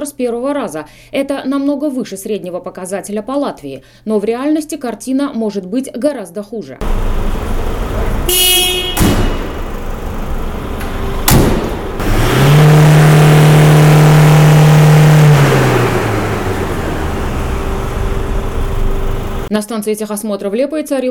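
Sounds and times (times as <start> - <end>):
speech: 0.0 - 9.0, 19.5 - 21.0
car engine revving and humming: 6.8 - 19.5
sharp knocks and clunks: 8.8 - 9.7, 10.7 - 12.2.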